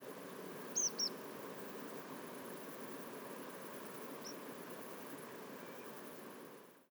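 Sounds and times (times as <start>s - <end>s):
faint steady background hiss: 0.0s - 6.8s
tree pipit double call at Portland: 0.7s - 1.2s.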